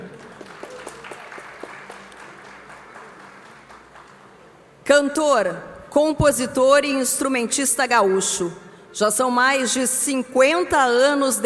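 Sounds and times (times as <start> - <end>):
audience applause: 0.0 - 4.4
speech: 4.9 - 11.4.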